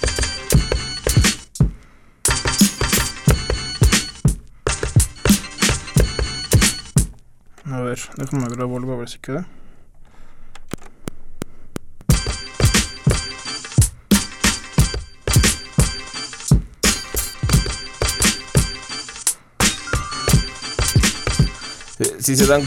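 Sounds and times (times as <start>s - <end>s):
funky instrumental beat with drum hits and layered synth tones: 0.0s - 7.2s, 12.0s - 22.6s
speech: 8.0s - 9.6s, 22.3s - 22.6s.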